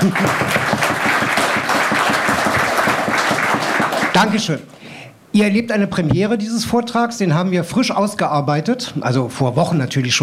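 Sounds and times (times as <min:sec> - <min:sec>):
speech: 0:00.0 - 0:00.5, 0:04.2 - 0:10.2
crowd applauding: 0:00.0 - 0:04.6.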